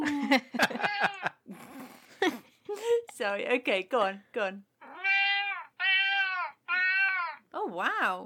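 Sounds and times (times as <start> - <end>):
speech: 0.3 - 0.8, 3.2 - 4.7, 7.6 - 8.2
cat meowing: 4.8 - 7.4.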